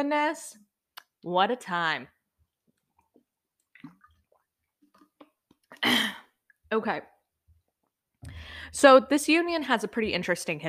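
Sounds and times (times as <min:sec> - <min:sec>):
speech: 0:00.0 - 0:02.2, 0:05.8 - 0:07.1, 0:08.2 - 0:10.6
person sipping and swallowing drinking water: 0:02.8 - 0:05.8
burst of breath into a mic: 0:08.2 - 0:08.8.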